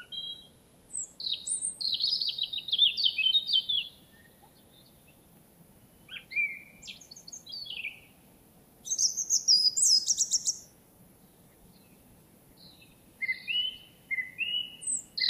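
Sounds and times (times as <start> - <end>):
European robin Erithacus rubecula warbling song with trills and whistles: 0.0 - 4.9, 6.0 - 8.1, 8.8 - 10.7, 12.6 - 15.2.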